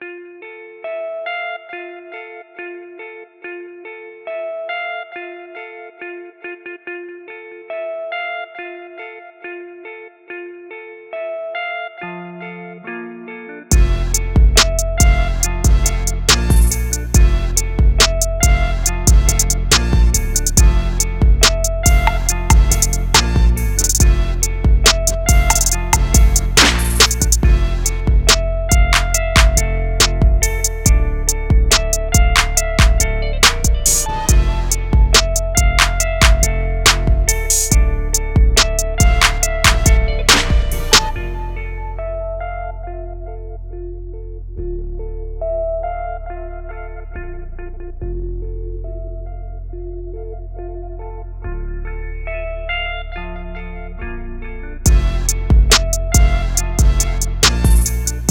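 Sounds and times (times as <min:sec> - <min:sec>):
soul trap beat: 0:13.7 - 0:42.5, 0:54.9 - 0:58.2.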